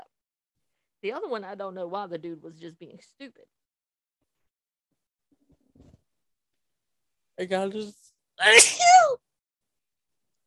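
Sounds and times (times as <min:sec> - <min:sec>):
speech: 0:01.0 - 0:03.6, 0:07.4 - 0:09.3
person sneezing loudly: 0:08.4 - 0:09.1.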